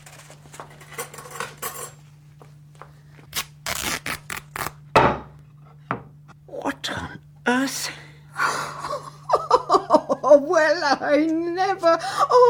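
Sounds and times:
low steady hum: 0:00.0 - 0:12.4
metallic utensils clinking in a kitchen drawer while someone rummages for scissors or a knife: 0:00.1 - 0:02.0
speech: 0:07.5 - 0:08.0, 0:10.4 - 0:12.4
laughter: 0:08.4 - 0:11.2.

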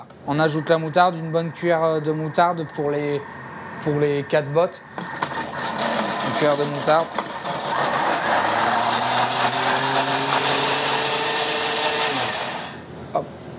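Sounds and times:
speech: 0:00.2 - 0:05.2, 0:06.4 - 0:07.2
blender coarsely chopping vegetable tops with mustard: 0:05.0 - 0:12.8.

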